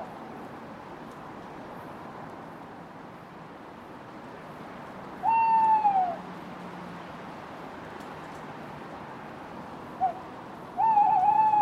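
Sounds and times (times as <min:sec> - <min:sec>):
owl hooting: 0:05.2 - 0:06.2, 0:10.0 - 0:10.2, 0:10.8 - 0:11.5.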